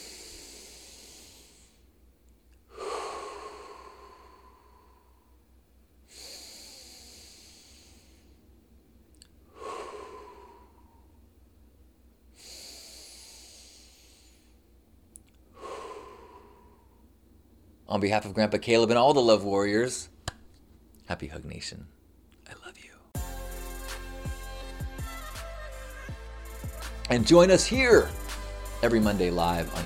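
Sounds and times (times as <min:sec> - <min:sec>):
group of people breathing in through the nose and out through the mouth: 0:00.0 - 0:01.9, 0:02.7 - 0:05.4, 0:06.1 - 0:08.4, 0:09.4 - 0:11.2, 0:12.4 - 0:14.6, 0:15.5 - 0:17.0
speech: 0:17.9 - 0:20.1, 0:21.1 - 0:22.0, 0:27.1 - 0:28.2, 0:28.8 - 0:29.8.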